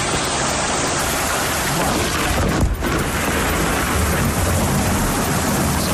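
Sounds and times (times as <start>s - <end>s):
heavy rain pouring during a storm: 0.0s - 5.9s
sharp crack of thunder: 1.6s - 5.9s.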